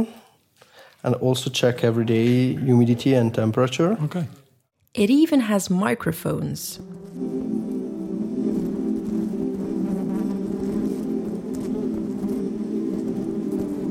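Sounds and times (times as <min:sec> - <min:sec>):
speech: 0:00.0 - 0:00.2, 0:01.0 - 0:07.5
many honeybees buzzing together inside a hive: 0:06.3 - 0:13.9.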